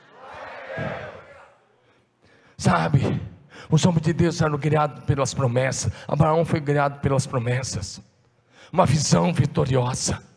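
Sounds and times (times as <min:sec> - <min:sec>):
audience shouting praise together: 0:00.0 - 0:01.6
speech: 0:02.7 - 0:08.1, 0:08.7 - 0:10.3.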